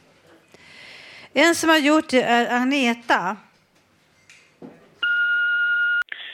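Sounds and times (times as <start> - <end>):
speech: 1.3 - 3.5
answering machine electronic beep: 5.0 - 6.0.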